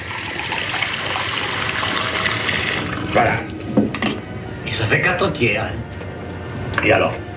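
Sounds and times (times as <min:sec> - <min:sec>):
water poured into a glass to mix a drink with lemon: 0:00.0 - 0:03.2
speech: 0:03.2 - 0:03.9, 0:04.9 - 0:06.0, 0:06.8 - 0:07.3.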